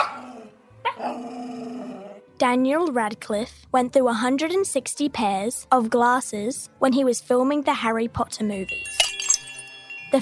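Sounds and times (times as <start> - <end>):
Jack Russell Terrier barking: 0.0 - 1.2
speech: 2.4 - 9.1.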